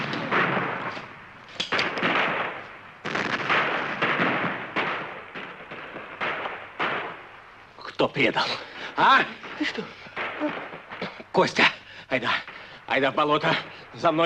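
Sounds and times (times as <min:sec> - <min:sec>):
gunshots in a shootout: 0:00.0 - 0:07.3, 0:09.0 - 0:12.7
speech: 0:08.0 - 0:10.6, 0:11.4 - 0:14.2.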